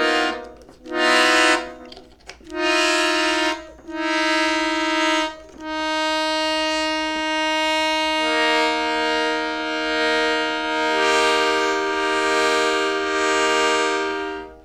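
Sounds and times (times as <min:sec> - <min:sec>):
dense dissonant chord from a stop-driven organ-like instrument with random stops open: 0:00.0 - 0:14.6.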